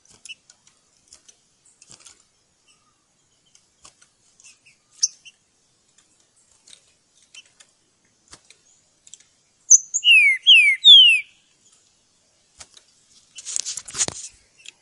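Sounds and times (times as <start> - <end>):
Green-winged Saltator whistled song in the bush: 9.7 - 11.4.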